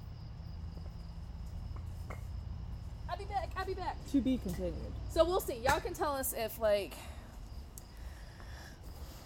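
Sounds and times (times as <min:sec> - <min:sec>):
low outdoor rumble: 0:00.0 - 0:08.9
chorus of crickets chirping outdoors at night: 0:00.0 - 0:09.2
speech: 0:03.6 - 0:07.2.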